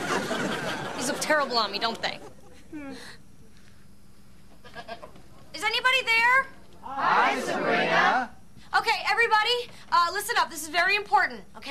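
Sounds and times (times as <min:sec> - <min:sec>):
laughter: 0:00.0 - 0:02.7
speech: 0:01.3 - 0:03.2, 0:05.6 - 0:11.7
goat bleating: 0:04.6 - 0:05.1.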